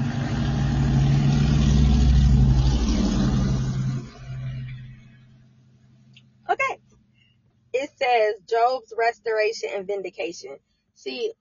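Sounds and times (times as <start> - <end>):
loud car engine with throaty exhaust passing down the street: 0.0 - 8.3
speech: 8.0 - 11.3.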